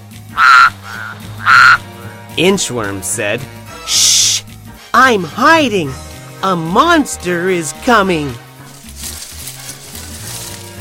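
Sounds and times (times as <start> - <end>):
toad croaking: 0.3 - 2.3
speech: 2.4 - 4.3, 5.0 - 8.4.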